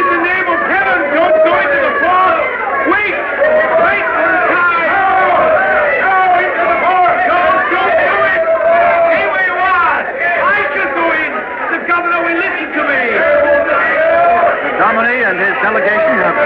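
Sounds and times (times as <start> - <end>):
dense agitated crowd roaring and shouting at a fort gate: 0.0 - 16.4.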